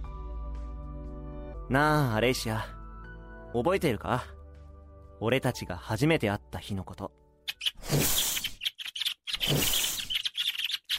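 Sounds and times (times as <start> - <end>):
speech: 1.7 - 2.8, 3.5 - 4.4, 5.2 - 7.2
baby birds chirping: 7.5 - 10.9.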